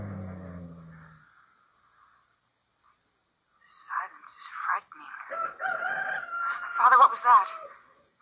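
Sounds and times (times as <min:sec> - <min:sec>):
low rumble: 0:00.0 - 0:01.4
rooster crowing: 0:05.3 - 0:07.8.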